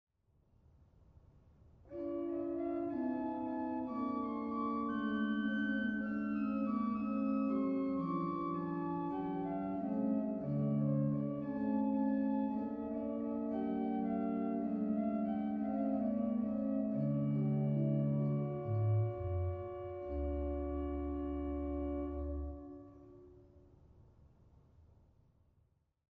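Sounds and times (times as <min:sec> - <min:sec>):
Sauer organ Concertfloete 8 stop in Dortmund: 0:01.9 - 0:23.3.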